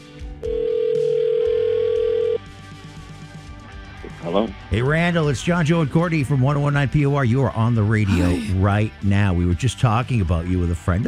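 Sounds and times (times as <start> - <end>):
outgoing-call phone ring tone: 0.4 - 2.4
speech: 4.3 - 11.0.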